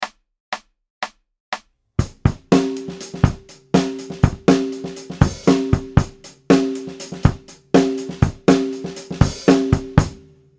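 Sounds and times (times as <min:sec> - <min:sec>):
16th note funk music: 0:02.0 - 0:10.2.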